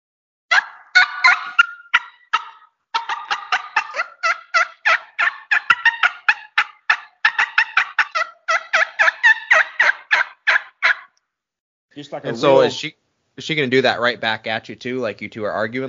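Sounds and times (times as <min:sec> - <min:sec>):
turkey hen cutting notes blown on a triple-reed mouth call: 0:00.5 - 0:11.2
speech: 0:12.0 - 0:15.8.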